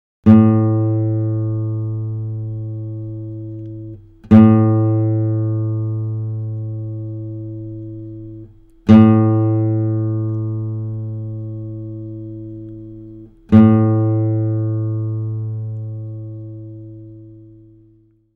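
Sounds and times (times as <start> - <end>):
converted guitar: 0.2 - 18.3.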